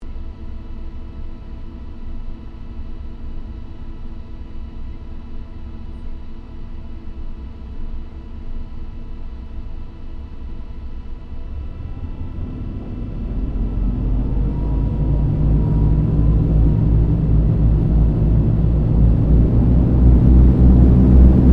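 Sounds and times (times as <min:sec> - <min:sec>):
Lockheed L-1049 Super Constellation taking off heard from the interior: 0:11.0 - 0:21.5.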